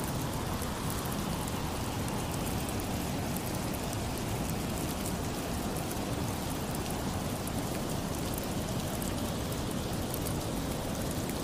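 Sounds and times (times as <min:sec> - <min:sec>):
heavy rain with wind: 0:00.0 - 0:11.4.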